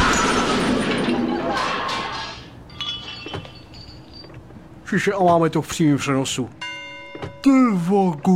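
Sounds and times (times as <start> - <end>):
truck that does not brake crashing into a Porsche sports car: 0.0 - 3.6
falling debris clinking and rattling: 0.0 - 4.6
speech: 4.9 - 6.6, 7.2 - 8.3.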